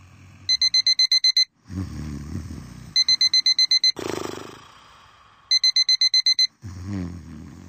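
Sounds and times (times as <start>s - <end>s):
alarm clock beeping: 0.5s - 1.6s, 3.0s - 4.0s, 5.5s - 6.6s
loud low snoring: 1.6s - 3.0s, 4.0s - 5.5s, 6.6s - 7.6s.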